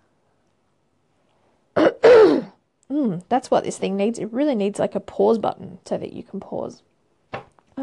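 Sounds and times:
throat clearing: 1.8 - 2.6
speech: 2.9 - 6.9.

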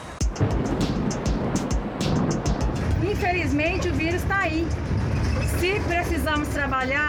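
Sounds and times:
number 61 city bus engine rumbling, pulling away from a stop: 0.0 - 7.0
street noise: 0.0 - 7.0
speech: 3.2 - 7.0.

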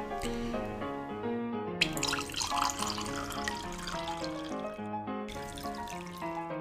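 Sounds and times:
music: 0.0 - 6.5
Cabernet Sauvignon wine pouring into a large glass: 1.8 - 6.4.

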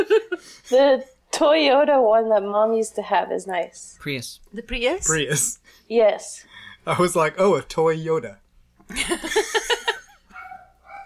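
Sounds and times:
laughter: 0.0 - 0.8, 8.9 - 10.2
speech: 0.0 - 9.9
dog barking: 10.3 - 11.0.

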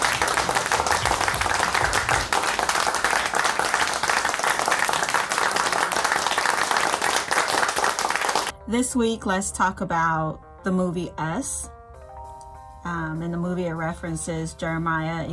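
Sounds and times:
crowd applause: 0.0 - 8.5
speech: 8.7 - 11.7, 12.8 - 15.3.

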